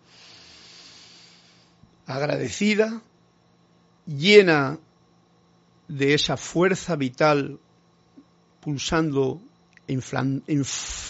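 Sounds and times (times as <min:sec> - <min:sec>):
deep breath drawn in: 0:00.0 - 0:01.8
speech: 0:02.1 - 0:03.1, 0:04.1 - 0:04.8, 0:05.9 - 0:07.6, 0:08.6 - 0:11.0.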